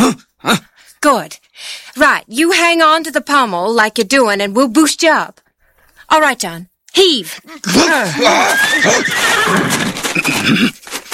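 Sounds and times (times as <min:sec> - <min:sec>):
speech: 0:01.0 - 0:05.4, 0:06.1 - 0:10.9
horse whinnying: 0:07.7 - 0:10.8
hoof clatter: 0:08.2 - 0:11.1.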